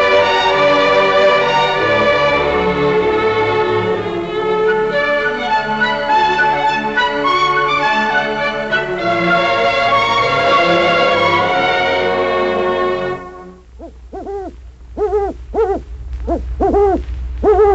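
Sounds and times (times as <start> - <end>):
sustained layered tone: 0.0 - 17.7
eagle owl hooting: 4.8 - 8.2, 13.7 - 17.7.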